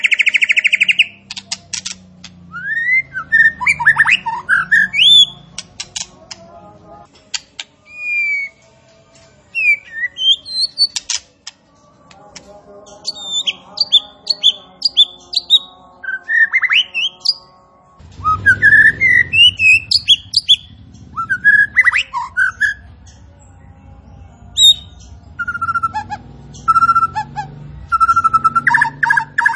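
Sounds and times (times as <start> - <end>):
striated grassbird song of sharp whistled notes and quick chirps: 0.0 - 1.6, 2.5 - 5.5, 7.8 - 8.6, 9.5 - 11.2, 13.0 - 17.5, 18.1 - 23.6, 24.3 - 29.5.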